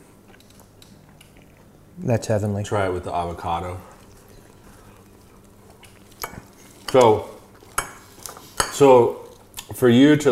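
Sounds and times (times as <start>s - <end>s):
people chewing steak: 0.0s - 1.9s, 3.7s - 9.8s
low hum: 0.0s - 10.3s
speech: 2.0s - 3.9s, 6.9s - 7.3s, 8.8s - 10.3s.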